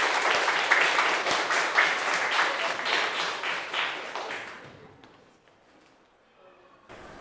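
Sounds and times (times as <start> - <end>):
room full of people clapping: 0.0 - 5.3.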